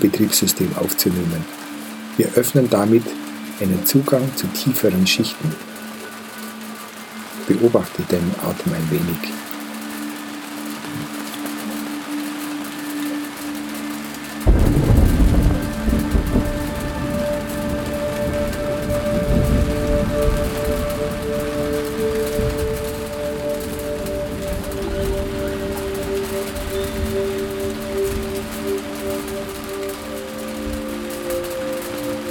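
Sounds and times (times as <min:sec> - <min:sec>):
speech: 0:00.0 - 0:01.6, 0:02.2 - 0:05.7, 0:07.5 - 0:09.5
soft sustained musical drone: 0:00.0 - 0:32.3
steady rain hiss in the Himalaya in India: 0:00.0 - 0:32.3
deep rumbling thunder in the Himalaya in India: 0:14.4 - 0:29.7.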